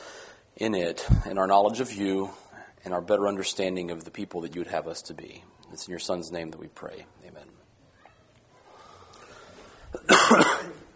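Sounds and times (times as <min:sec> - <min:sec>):
speech: 0:00.6 - 0:07.6
harsh raspy cough: 0:09.9 - 0:10.9.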